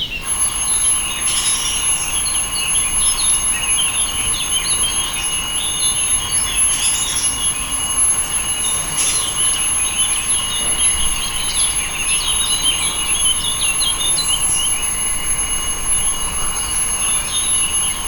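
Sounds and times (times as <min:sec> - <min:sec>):
alarm of a water transfer pump: 0:00.2 - 0:18.0
water transfer pump: 0:00.2 - 0:18.0.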